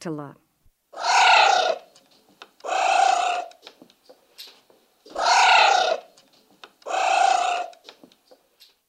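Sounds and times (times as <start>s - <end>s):
South American giant anteater: 1.0s - 1.9s, 2.6s - 3.6s, 5.1s - 6.2s, 6.8s - 7.9s.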